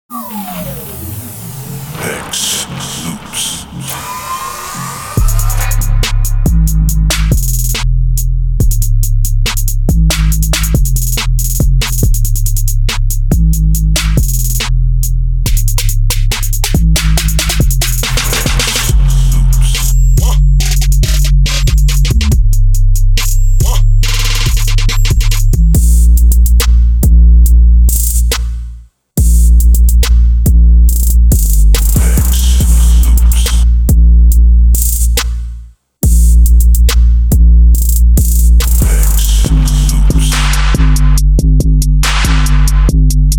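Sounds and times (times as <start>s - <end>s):
trap drums: 5.1s - 43.3s.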